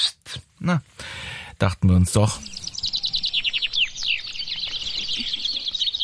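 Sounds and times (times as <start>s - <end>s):
speech: 0.6s - 1.0s, 1.6s - 2.5s
eighteen chaffinches singing at a finch singing contest in Bennekenstein, Harz, Germany: 2.2s - 6.0s.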